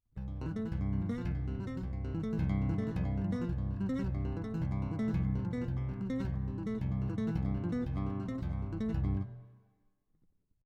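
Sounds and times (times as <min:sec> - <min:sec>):
bass riff: 0:00.2 - 0:09.4.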